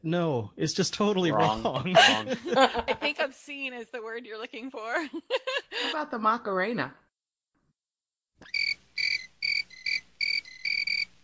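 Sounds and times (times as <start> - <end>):
speech: 0.0 - 7.0
laughter: 1.3 - 3.2, 5.0 - 6.0
crickets chirping: 8.4 - 11.2.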